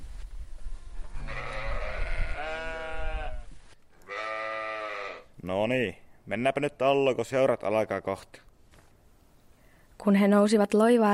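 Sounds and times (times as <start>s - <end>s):
many sheep bleating at a pasture fence: 1.2s - 5.3s
speech: 5.4s - 8.5s, 10.0s - 11.1s.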